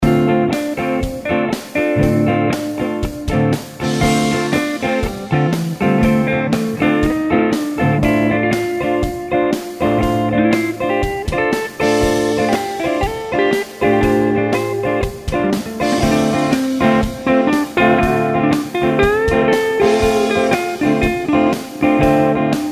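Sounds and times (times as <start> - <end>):
guitar playing a Dm7 chord with lead: 0.0 - 22.7.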